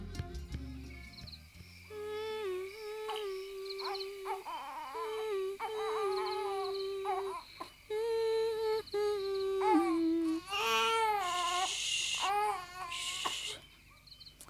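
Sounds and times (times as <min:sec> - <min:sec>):
baby crying: 0:02.0 - 0:13.6.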